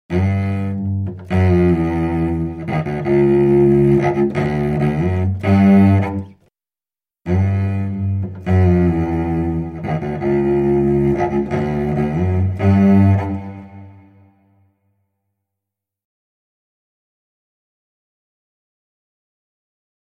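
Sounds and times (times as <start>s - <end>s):
cello melody: 0.1s - 6.5s, 7.2s - 14.7s.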